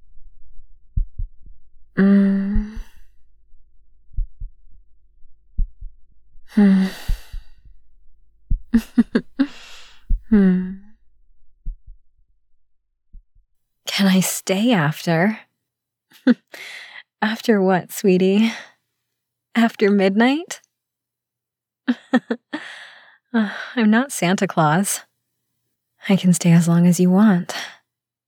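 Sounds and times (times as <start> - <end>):
slow steady heartbeat: 0.0 - 12.1
person sighing and humming: 2.0 - 3.0, 6.5 - 7.5, 8.7 - 10.9
heavy breathing: 6.5 - 7.6, 8.8 - 10.4, 16.5 - 17.1, 22.5 - 23.8
speech: 6.6 - 7.1, 14.2 - 15.5, 16.2 - 18.7, 19.6 - 20.6, 21.9 - 25.1, 26.0 - 27.8.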